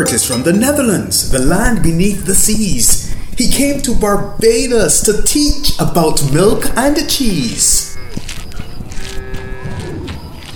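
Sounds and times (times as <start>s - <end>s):
speech: 0.0s - 7.9s
busy hiss: 0.0s - 8.1s
bull mooing: 8.8s - 10.1s.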